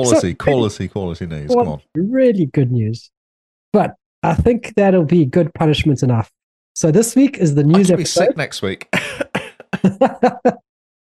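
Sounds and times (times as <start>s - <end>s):
laughter: 0.0s - 1.8s, 8.0s - 10.6s
speech: 0.0s - 10.6s
harsh coughs: 9.0s - 9.9s.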